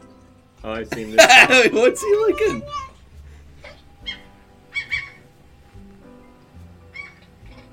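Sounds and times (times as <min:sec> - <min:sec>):
speech: 0:00.6 - 0:02.9
laughter: 0:00.9 - 0:02.6
cat making a strange chattering noise: 0:03.6 - 0:05.2, 0:06.9 - 0:07.7.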